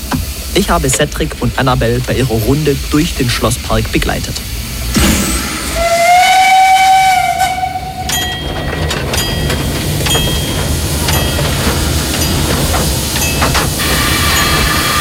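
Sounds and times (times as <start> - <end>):
rumble of rolling steam locomotive wheels: 0.0 - 5.0, 5.8 - 14.9
steam locomotive hissing steam: 0.0 - 8.7, 9.5 - 14.9
speech: 0.6 - 5.2
steam locomotive whistle blast: 4.9 - 8.2.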